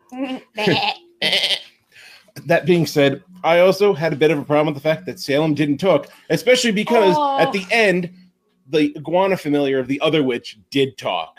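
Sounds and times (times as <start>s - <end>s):
speech: 0.1s - 1.5s, 2.5s - 11.3s
goat bleating: 0.6s - 1.8s.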